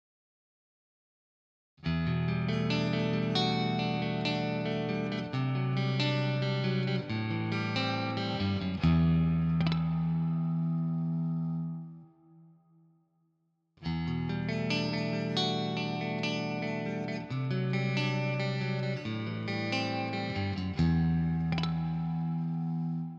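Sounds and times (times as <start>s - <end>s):
clean split coil humbucker electric guitar: 1.8s - 12.5s, 13.8s - 23.1s.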